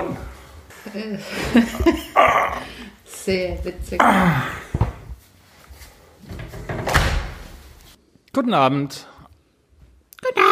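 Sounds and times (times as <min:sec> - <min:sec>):
speech: 0:00.9 - 0:04.6, 0:08.4 - 0:09.1
recording studio door rattling: 0:06.3 - 0:07.4
recording studio door slamming shut: 0:06.6 - 0:07.5.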